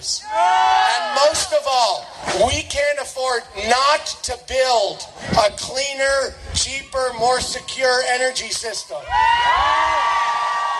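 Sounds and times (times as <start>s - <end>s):
speech: 0.0s - 0.6s, 1.3s - 10.4s
people shouting and yelling: 0.0s - 2.5s, 6.5s - 10.7s
crowd cheering and whooping outdoors: 0.2s - 1.6s, 6.8s - 10.7s.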